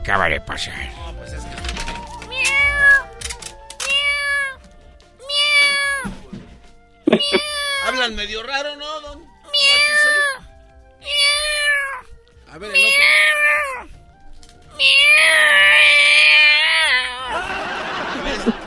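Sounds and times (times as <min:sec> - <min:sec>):
speech: 0:00.1 - 0:02.8, 0:07.3 - 0:10.2, 0:12.6 - 0:13.7
cats meowing loudly and up: 0:02.2 - 0:03.2, 0:03.8 - 0:04.6, 0:05.2 - 0:06.2, 0:07.1 - 0:08.0, 0:09.4 - 0:14.0, 0:14.7 - 0:17.5
laughter: 0:07.1 - 0:07.5, 0:17.3 - 0:18.6.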